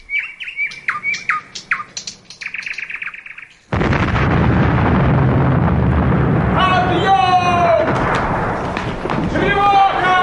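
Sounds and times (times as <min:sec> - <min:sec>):
nightingales singing at night: 0:00.0 - 0:03.7
sudden loud roaring burst: 0:03.7 - 0:10.1.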